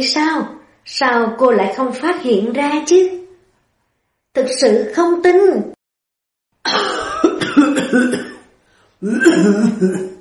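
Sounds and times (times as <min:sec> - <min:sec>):
speech: 0:00.0 - 0:03.2, 0:04.4 - 0:05.7, 0:06.6 - 0:07.0, 0:09.0 - 0:10.1
loud dry raspy cough: 0:06.7 - 0:10.2.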